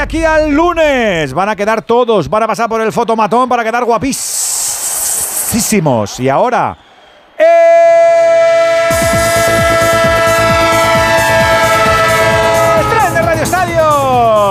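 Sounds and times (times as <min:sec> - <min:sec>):
speech: 0:00.1 - 0:04.7, 0:05.5 - 0:07.9
train horn blaring in a radio jingle as a sustained chord: 0:08.5 - 0:13.9.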